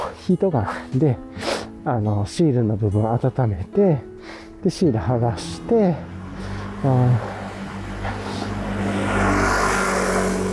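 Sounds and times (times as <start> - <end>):
speech: 0.3 - 6.1, 6.8 - 7.3
loud motorcycle passing by: 5.2 - 10.5.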